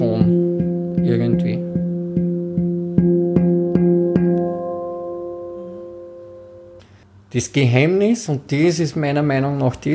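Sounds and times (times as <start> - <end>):
finger striking a tuned oval steel drum: 0.0 - 6.9
speech: 7.4 - 9.9.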